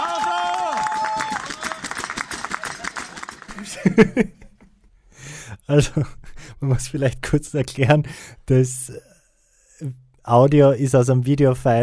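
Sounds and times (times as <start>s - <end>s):
audience applause: 0.0s - 4.0s
laughter: 2.6s - 4.7s
speech: 3.9s - 4.4s, 5.7s - 9.1s, 9.8s - 11.8s.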